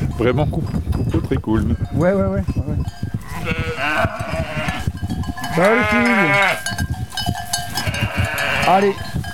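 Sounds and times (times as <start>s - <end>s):
speech: 0.2s - 2.6s, 5.6s - 6.8s, 8.7s - 9.1s
ewes and lambs bleating in a calm flock: 3.2s - 6.8s, 7.7s - 8.9s.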